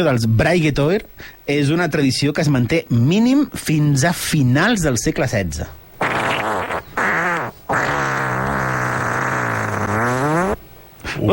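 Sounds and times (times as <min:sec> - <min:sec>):
speech: 0:00.0 - 0:05.8
long drawn-out fart: 0:06.0 - 0:10.6.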